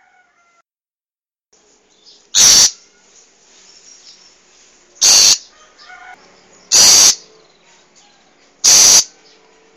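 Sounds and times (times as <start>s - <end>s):
wild long-tailed shrike giving loud harsh rasping notes: 2.3s - 3.0s, 5.0s - 7.3s, 8.6s - 9.2s.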